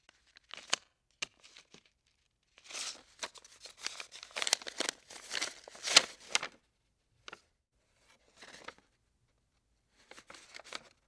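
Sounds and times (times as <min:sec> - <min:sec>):
paper handling movement: 0:00.0 - 0:06.6, 0:08.0 - 0:08.9, 0:09.9 - 0:11.0.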